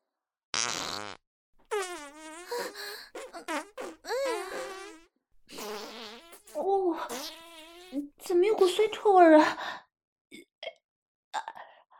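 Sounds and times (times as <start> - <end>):
loud squeaky farts: 0.6 - 8.2
speech: 8.6 - 9.7.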